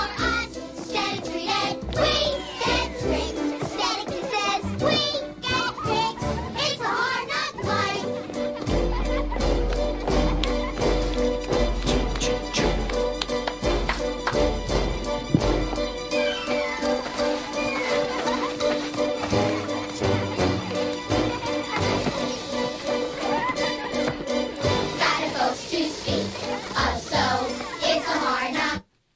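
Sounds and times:
group of children singing a musical theatre number: 0:00.0 - 0:08.6, 0:16.0 - 0:28.8
instrumental backing music with heavy bass: 0:00.0 - 0:28.5
laughter: 0:05.6 - 0:12.3, 0:16.2 - 0:24.6.

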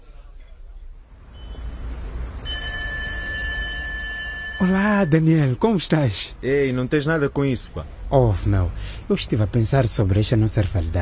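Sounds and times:
telephone ringing with a high electronic trill: 0:02.5 - 0:05.2
speech: 0:04.6 - 0:10.9.

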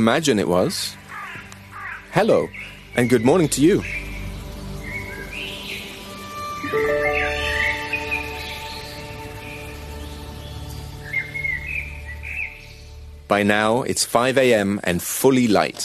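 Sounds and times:
speech: 0:00.0 - 0:01.0, 0:02.1 - 0:04.0, 0:13.3 - 0:15.8
robin chirping at dawn: 0:01.1 - 0:13.2.

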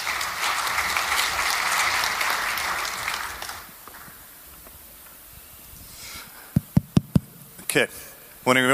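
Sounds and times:
audience applauding to welcome speakers to the stage: 0:00.0 - 0:04.2
quiet noise: 0:00.0 - 0:08.7
speech: 0:07.8 - 0:08.7.

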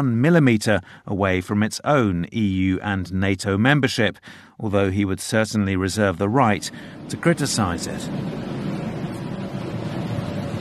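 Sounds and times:
speech: 0:00.0 - 0:08.6
pleasure cruise boat engine rumble on a river: 0:06.3 - 0:10.5
wind noise: 0:06.6 - 0:10.5
wash of river water: 0:06.7 - 0:10.5.

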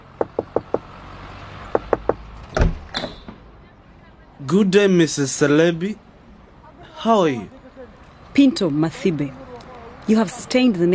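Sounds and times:
sharp knocking on the door of a house: 0:00.2 - 0:00.8, 0:01.8 - 0:02.2
door clunk and rattle: 0:01.8 - 0:03.4
speech: 0:04.4 - 0:06.0, 0:07.0 - 0:07.6, 0:08.4 - 0:09.4, 0:10.1 - 0:10.9.

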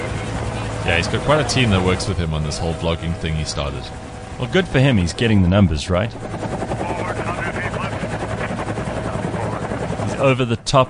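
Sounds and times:
hovering helicopter rotor thumping: 0:00.0 - 0:10.8
speech: 0:00.8 - 0:06.7, 0:10.2 - 0:10.8.

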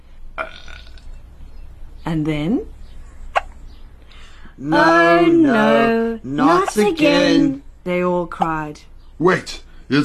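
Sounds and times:
loud drawn-out baby burp: 0:00.4 - 0:01.0
speech: 0:02.1 - 0:02.8, 0:04.6 - 0:10.0.

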